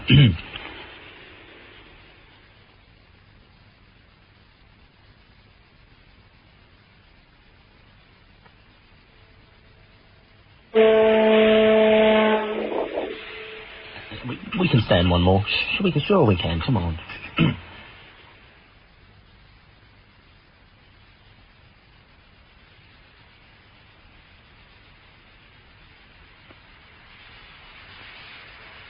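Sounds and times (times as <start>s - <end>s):
quiet hiss: 0.0s - 28.8s
speech: 0.1s - 0.5s, 14.9s - 17.6s
foghorn sounding from a house: 10.7s - 14.6s.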